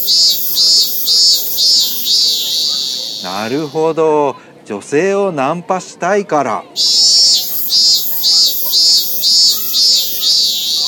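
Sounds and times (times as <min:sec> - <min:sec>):
cicada buzzing with shrill high call: 0:00.0 - 0:03.9, 0:06.8 - 0:10.8
speech: 0:03.2 - 0:06.9.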